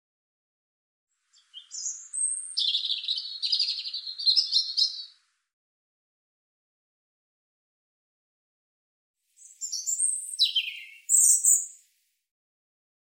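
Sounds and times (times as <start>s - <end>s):
European robin singing: 1.2s - 5.3s, 9.4s - 11.9s.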